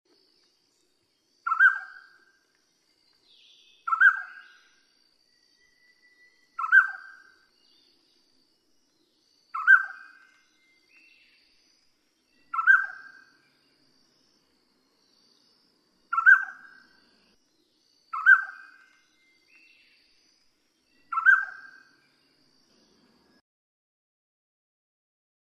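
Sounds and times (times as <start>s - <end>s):
Taiwan scimitar babbler calling: 1.5s - 2.2s, 3.8s - 4.6s, 6.6s - 7.4s, 9.6s - 10.3s, 12.5s - 13.3s, 16.1s - 16.9s, 18.1s - 18.9s, 21.1s - 21.8s.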